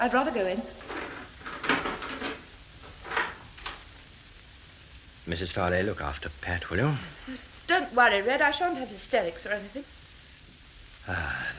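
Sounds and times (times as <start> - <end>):
speech: 0.0 - 0.9, 5.3 - 10.0, 11.1 - 11.5
wooden door creaking and scraping as it is opened: 0.0 - 3.9
door latch and frame knocking: 0.6 - 3.8.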